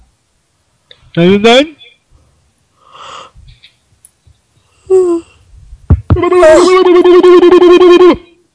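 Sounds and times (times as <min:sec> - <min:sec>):
speech: 0:01.2 - 0:01.8
person's exaggerated vocal yawn: 0:04.9 - 0:05.4, 0:06.2 - 0:08.3.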